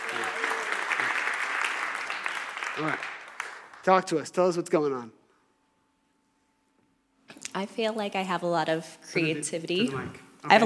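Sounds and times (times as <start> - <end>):
audience applauding a volunteer in a group session: 0.0 - 4.3
speech: 2.8 - 3.1, 3.8 - 5.2, 7.6 - 10.6.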